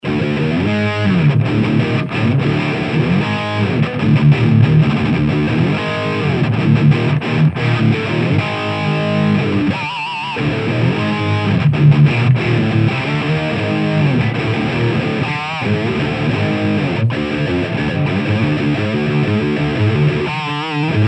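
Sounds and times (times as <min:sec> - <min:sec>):
full distortion: 0:00.0 - 0:21.0.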